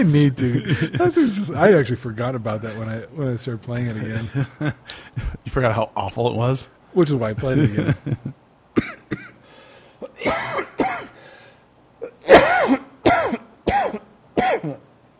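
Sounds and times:
laughter: 0.0 - 1.5, 4.0 - 5.0, 7.4 - 8.4
speech: 0.0 - 9.2
person coughing: 8.8 - 9.4, 10.0 - 11.2, 12.0 - 14.9.

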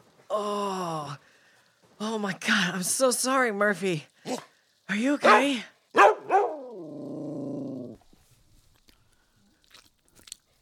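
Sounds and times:
speech: 0.4 - 1.3, 2.0 - 5.7
dog barking: 5.2 - 6.6
dog growling: 6.4 - 8.0.

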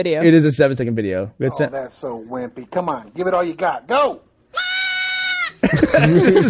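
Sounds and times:
speech: 0.0 - 4.6, 5.6 - 6.4
goat bleating weakly: 4.5 - 5.6
laughter: 5.6 - 6.4.

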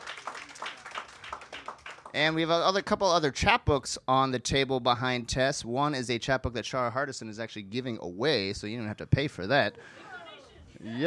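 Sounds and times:
audience applause: 0.0 - 2.2
speech: 2.1 - 10.0, 10.8 - 11.0
laughter: 9.7 - 11.0.

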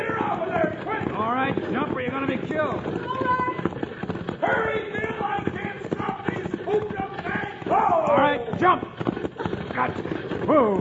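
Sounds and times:
people shouting: 0.0 - 1.2, 3.0 - 3.7, 4.4 - 8.8
galloping horse hooves clip-clopping: 0.0 - 10.8
speech: 1.7 - 3.5, 9.8 - 10.8.

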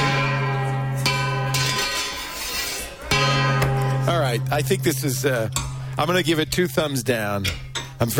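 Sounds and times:
gong being struck: 0.0 - 2.4, 3.1 - 6.5
speech: 4.4 - 8.1.

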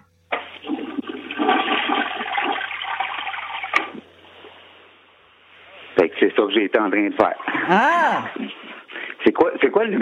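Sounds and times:
toilet flushing: 0.3 - 4.7
speech: 6.4 - 8.6, 9.4 - 9.9.

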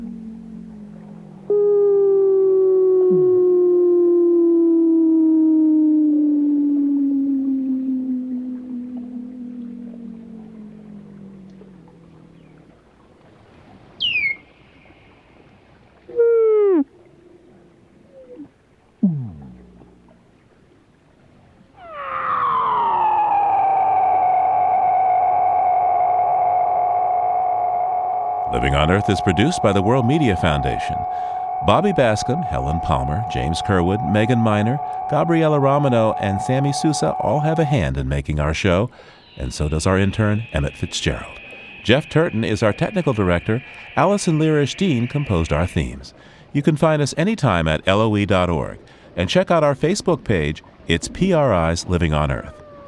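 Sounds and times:
Weddell seal underwater calls: 0.0 - 20.7, 21.6 - 50.0, 50.6 - 52.8
speech: 28.8 - 52.6.

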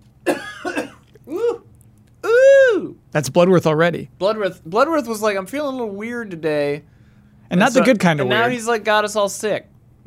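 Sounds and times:
person coughing: 0.2 - 1.7
speech: 3.1 - 6.9, 7.5 - 10.0.

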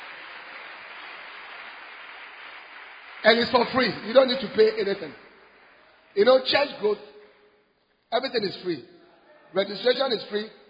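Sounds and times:
crowd clapping for the Lord: 0.0 - 7.5
speech: 3.2 - 5.3, 6.1 - 7.1, 8.1 - 8.9, 9.5 - 10.6.

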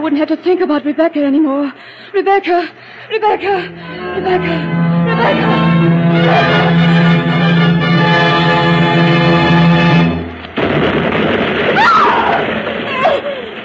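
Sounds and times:
speech: 0.0 - 7.0
tonal drone: 3.4 - 10.6
distress rockets exploding for a ship ashore in the bay: 10.2 - 13.6.

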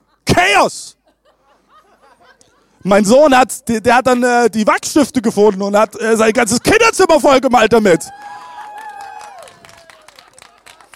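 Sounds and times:
speech: 0.5 - 1.0, 2.8 - 8.4
laughter: 0.9 - 2.8, 5.8 - 7.4, 9.8 - 10.9
high drawn-out cheer or whoop: 7.8 - 10.9
crowd clapping and applauding: 8.0 - 10.9.

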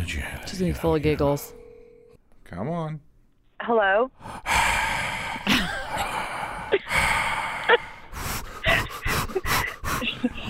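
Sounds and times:
speech: 0.2 - 1.6, 2.5 - 4.6
heavy breathy exhalations and sharp intakes of air: 4.2 - 10.4
quick snorting gasps: 4.2 - 10.4.

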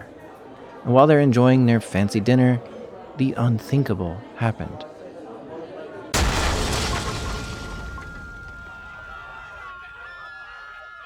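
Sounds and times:
speech: 0.8 - 4.9
explosion: 6.2 - 9.4
debris crackling: 6.2 - 9.7
faint high ringing tone: 7.4 - 11.0.

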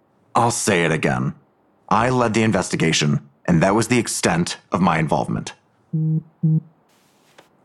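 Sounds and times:
speech: 0.4 - 6.7
phone call alert buzzy electronic tones: 6.0 - 6.7.

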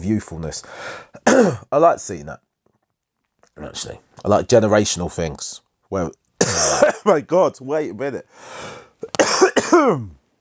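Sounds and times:
speech: 0.0 - 2.5, 3.6 - 10.2
person coughing harshly: 1.2 - 1.6, 6.4 - 7.1, 9.0 - 10.2.

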